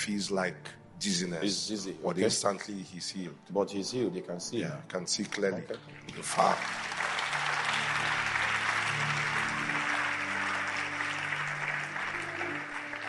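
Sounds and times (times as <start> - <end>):
speech: 0.0 - 7.0
crowd clapping: 5.7 - 13.0.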